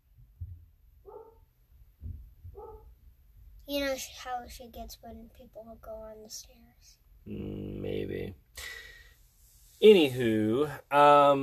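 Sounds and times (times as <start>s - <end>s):
dog barking: 1.0s - 1.5s, 2.5s - 2.9s
soft low thuds: 1.8s - 3.6s
speech: 3.7s - 8.8s, 9.8s - 11.4s.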